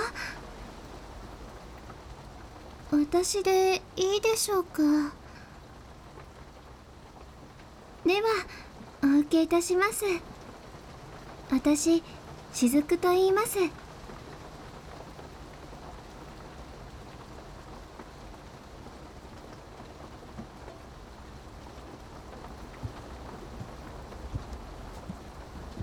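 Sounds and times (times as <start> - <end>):
sharper drips and patters: 0.0 - 25.8
steady rain falling: 0.0 - 25.8
speech: 2.9 - 5.2, 8.1 - 8.6, 9.3 - 10.3, 11.5 - 13.8.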